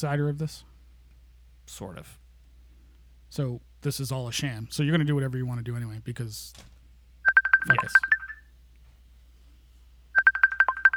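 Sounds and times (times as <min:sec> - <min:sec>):
speech: 0:00.0 - 0:00.7, 0:01.7 - 0:02.2, 0:03.3 - 0:06.7, 0:07.6 - 0:08.2
phone ringing with an electronic trill for an incoming call: 0:07.3 - 0:08.4, 0:10.2 - 0:10.9.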